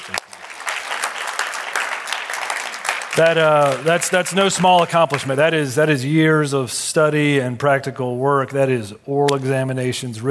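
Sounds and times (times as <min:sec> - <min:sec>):
congregation applauding: 0:00.0 - 0:05.3
speech: 0:03.2 - 0:10.2.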